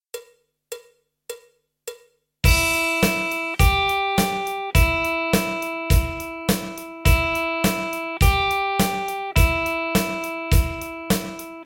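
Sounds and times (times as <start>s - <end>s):
electric guitar blues-rock lick: 2.5s - 11.6s.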